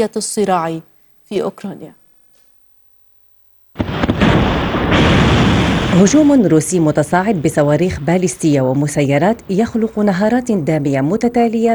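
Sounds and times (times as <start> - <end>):
speech: 0.0 - 2.0, 6.0 - 11.7
explosions booming: 3.8 - 9.5.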